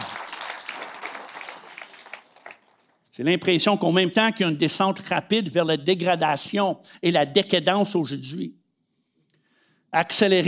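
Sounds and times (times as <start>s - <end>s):
crowd at an Easter church gathering in a football stadium applauding: 0.0s - 3.0s
speech: 3.2s - 8.6s, 9.9s - 10.4s.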